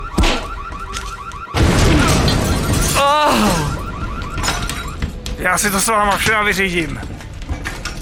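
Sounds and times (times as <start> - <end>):
warbling siren-like alarm: 0.0 - 5.4
loud explosion with roaring rumble of debris: 1.6 - 5.1
speech: 5.4 - 7.1.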